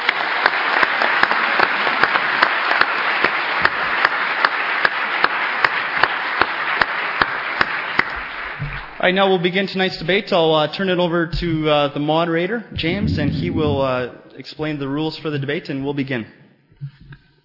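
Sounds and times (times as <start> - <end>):
audience applause: 0.0 - 9.1
speech: 9.0 - 16.9.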